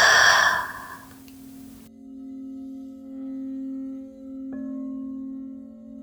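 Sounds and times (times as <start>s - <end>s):
deep breath drawn in through the nose and released: 0.0s - 1.8s.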